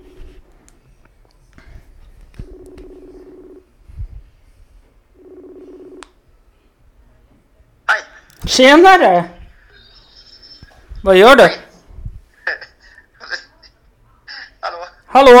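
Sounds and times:
low buzzing telephone ringback tones as a call is placed: 0:00.0 - 0:01.0, 0:02.4 - 0:04.1, 0:05.1 - 0:06.0, 0:09.6 - 0:11.0
speech: 0:08.5 - 0:09.4, 0:11.1 - 0:11.6.

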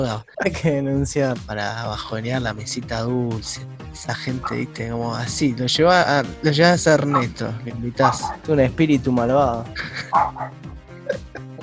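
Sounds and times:
speech: 0:00.0 - 0:11.2
person vocally imitating a dog barking: 0:04.4 - 0:04.7, 0:08.0 - 0:08.5, 0:10.0 - 0:10.6
laughter: 0:09.6 - 0:11.6.

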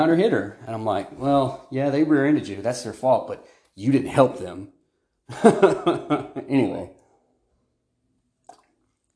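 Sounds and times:
speech: 0:00.1 - 0:07.0
laughter: 0:05.3 - 0:06.9
sip of water: 0:08.4 - 0:09.1.

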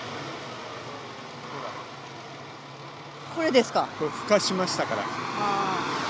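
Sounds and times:
diesel railcar engine idling: 0:00.2 - 0:04.3
speech: 0:03.4 - 0:05.9.

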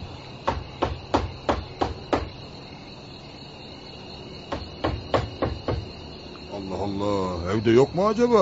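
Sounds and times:
crickets chirping: 0:00.0 - 0:08.4
firm rapid knocking on a door: 0:00.4 - 0:02.4, 0:04.5 - 0:06.0
speech: 0:06.9 - 0:08.4.

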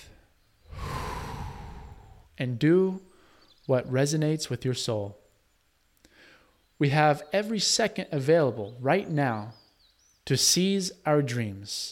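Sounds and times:
slow breathing in and out: 0:00.1 - 0:02.4, 0:06.0 - 0:06.6
speech: 0:02.4 - 0:03.1, 0:03.7 - 0:05.2, 0:06.8 - 0:09.6, 0:10.3 - 0:11.8.

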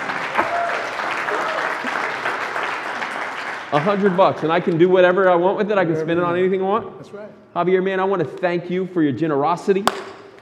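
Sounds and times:
audience applause for a man on stage: 0:00.0 - 0:04.5
speech: 0:03.7 - 0:10.0.

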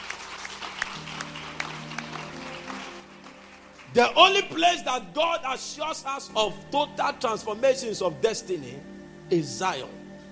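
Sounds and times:
audience applauding: 0:00.0 - 0:04.6
speech: 0:03.9 - 0:10.0.

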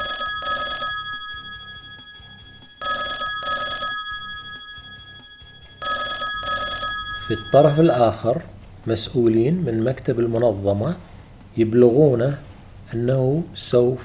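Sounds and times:
telephone ringing with a bright metallic bell tone: 0:00.0 - 0:08.5
speech: 0:07.3 - 0:14.0.

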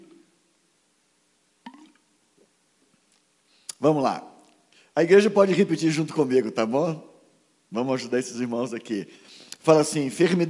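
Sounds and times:
person drinking water during a church service: 0:01.6 - 0:02.0
mouth clicks: 0:03.6 - 0:03.8
speech: 0:03.8 - 0:04.3, 0:05.0 - 0:07.1, 0:07.7 - 0:10.4.

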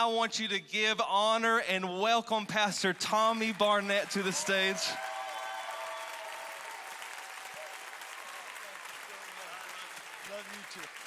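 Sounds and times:
speech: 0:00.0 - 0:05.1
large congregation applauding: 0:02.8 - 0:11.0
faint cheering: 0:03.6 - 0:11.0.

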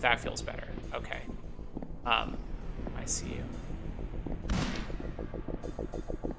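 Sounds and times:
speech: 0:00.0 - 0:03.6, 0:05.6 - 0:06.3
rhythmic pulsing video game sound: 0:00.0 - 0:06.3
video game gunshots: 0:04.5 - 0:05.3.

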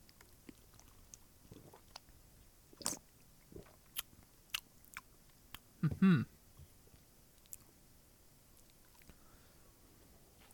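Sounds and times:
person sipping a drink: 0:01.5 - 0:02.0
speech: 0:05.9 - 0:06.3.

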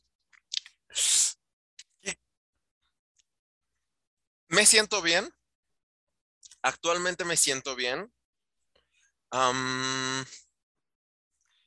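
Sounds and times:
small mouth clicks: 0:00.3 - 0:00.8
speech: 0:04.6 - 0:05.4, 0:06.6 - 0:08.2, 0:09.3 - 0:10.4.

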